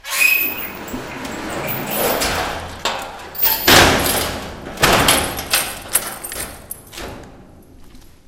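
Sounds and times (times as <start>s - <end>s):
door closing: 0.0s - 7.4s.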